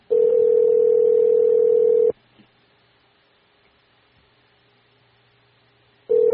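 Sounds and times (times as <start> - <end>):
phone ringback tone: 0.1 - 2.1, 6.1 - 6.3.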